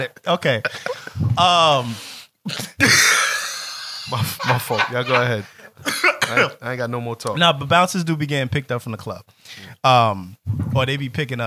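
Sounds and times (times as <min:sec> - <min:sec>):
speech: 0:00.0 - 0:03.2, 0:04.1 - 0:11.4
laughter: 0:00.6 - 0:01.2, 0:02.8 - 0:06.5
person coughing: 0:05.8 - 0:06.6.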